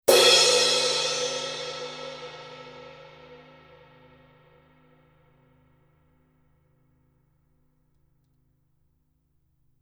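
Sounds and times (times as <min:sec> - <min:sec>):
Paiste Color Sound 900 Black heavy crash cymbal: 0:00.1 - 0:04.5.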